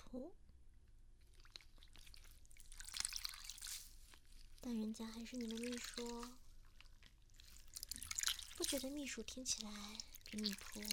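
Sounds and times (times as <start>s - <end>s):
speech: 0.1s - 0.4s, 4.6s - 6.4s, 8.6s - 10.9s
water dripping and splashing during a bath: 1.3s - 3.9s, 5.0s - 10.9s.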